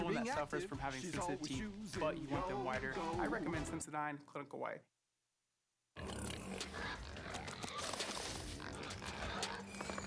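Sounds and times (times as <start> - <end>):
speech: 0.1 - 4.9
crowd of pigs grunting and squealing: 1.9 - 3.7, 6.0 - 10.0.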